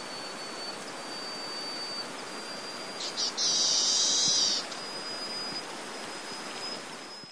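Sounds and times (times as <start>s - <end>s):
hiss: 0.0s - 7.0s
golden parrotbill buzzing trill call: 0.0s - 7.2s
golden parrotbill short ticks: 3.0s - 4.9s
speech: 3.2s - 3.7s.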